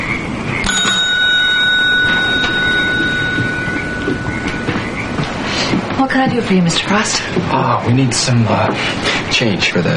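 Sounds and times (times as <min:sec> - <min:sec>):
low hum: 0:00.0 - 0:09.9
service bell ding on a counter: 0:00.6 - 0:05.8
speech: 0:06.0 - 0:09.9.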